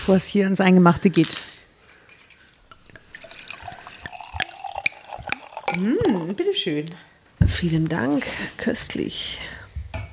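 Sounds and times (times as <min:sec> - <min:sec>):
speech: 0:00.1 - 0:01.6, 0:05.8 - 0:09.6
wine poured from a bottle into a glass: 0:02.0 - 0:06.8.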